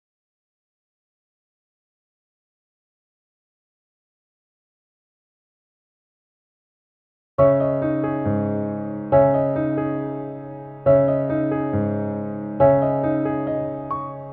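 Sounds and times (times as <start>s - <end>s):
piano loop in C sharp minor: 7.4s - 14.3s.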